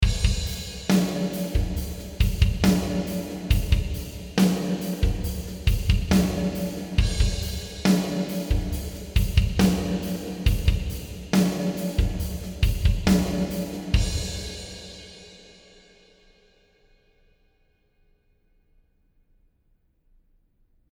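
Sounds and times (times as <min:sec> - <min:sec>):
drums playing: 0:00.0 - 0:15.1.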